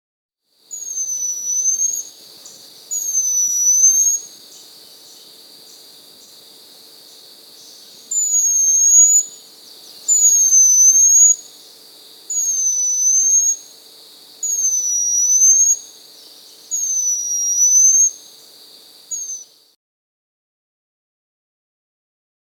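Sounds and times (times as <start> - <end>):
Shrike-like cotinga Laniosoma elegans calling: 0.7 - 6.4, 7.1 - 13.8, 14.4 - 18.4, 19.1 - 19.6.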